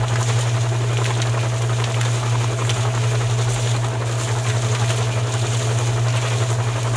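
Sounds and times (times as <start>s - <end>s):
mechanical mixer machine running: 0.0s - 6.9s.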